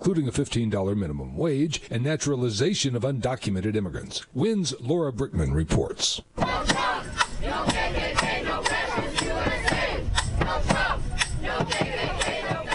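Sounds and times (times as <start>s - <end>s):
speech: 0.1s - 6.9s
large outdoor crowd of protesters chanting and shouting: 6.4s - 12.7s.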